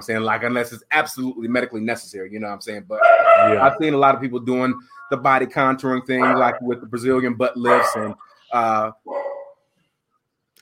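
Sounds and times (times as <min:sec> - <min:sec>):
speech: 0:00.0 - 0:09.2
dog barking: 0:03.0 - 0:03.6, 0:06.2 - 0:06.6, 0:07.6 - 0:08.1, 0:09.1 - 0:09.6.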